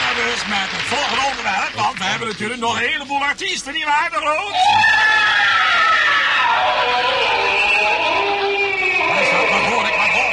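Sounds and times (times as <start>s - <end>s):
speech: 0.2s - 5.4s, 6.6s - 8.4s
loud drawn-out high-pitched scream from the toilet: 4.5s - 10.3s.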